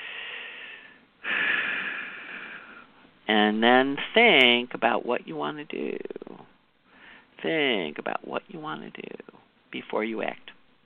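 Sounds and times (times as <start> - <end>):
person taking deep breaths: 0.0 - 3.0, 6.8 - 7.4
speech: 3.3 - 6.2, 7.4 - 10.5.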